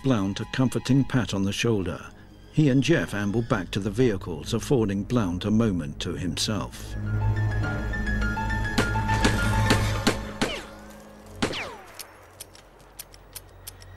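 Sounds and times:
speech: 0:00.0 - 0:07.8
handgun emptied into the side of an anthill: 0:08.8 - 0:10.8, 0:11.4 - 0:12.6
bullets thudding into an anthill: 0:08.8 - 0:12.5.

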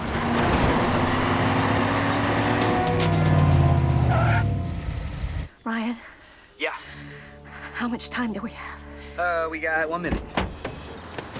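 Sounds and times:
car engine rumbling as it cuts in front of a school bus and parks: 0:00.0 - 0:05.5
road noise: 0:00.0 - 0:05.5, 0:09.9 - 0:11.3
speech: 0:07.8 - 0:10.4.

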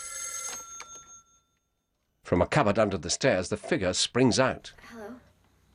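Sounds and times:
telephone ringing with a bell-like trill: 0:00.0 - 0:02.0
speech: 0:02.3 - 0:05.2.

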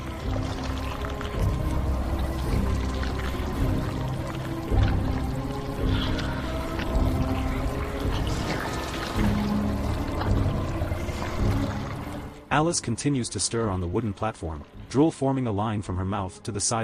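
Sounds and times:
thick sticky honey dripping and being scooped into a mouth and eaten: 0:00.0 - 0:12.3
speech: 0:12.6 - 0:16.8.

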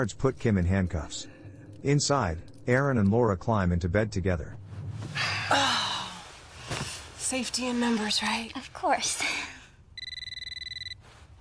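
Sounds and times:
speech: 0:00.0 - 0:05.7, 0:07.3 - 0:09.5
telephone ringing with an electronic trill: 0:10.0 - 0:11.0.

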